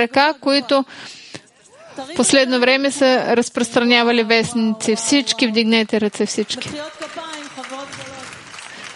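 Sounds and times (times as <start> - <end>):
speech: 0.0 - 1.2, 2.0 - 7.2
audience applause: 6.3 - 8.9.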